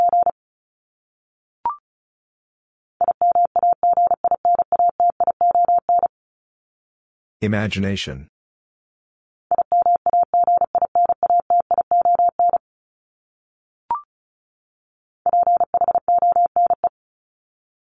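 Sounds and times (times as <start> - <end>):
rapid Morse code beeps at 35 words per minute: 0.0 - 0.3, 3.0 - 6.1, 9.5 - 12.6, 15.3 - 16.9
speech: 7.4 - 8.3.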